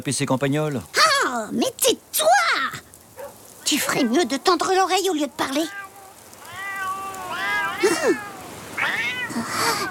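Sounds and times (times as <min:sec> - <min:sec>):
speech: 0:00.0 - 0:02.8, 0:03.7 - 0:05.8, 0:07.8 - 0:08.3
several cats meowing: 0:05.3 - 0:09.8.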